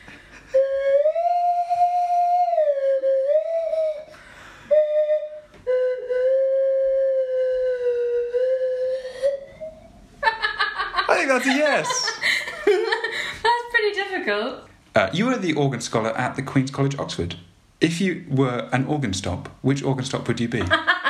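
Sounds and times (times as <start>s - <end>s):
swanee slide whistle playing a slow wavering tune: 0.5s - 10.0s
laughter: 10.2s - 13.7s, 20.6s - 21.0s
speech: 11.4s - 12.1s, 14.3s - 20.9s.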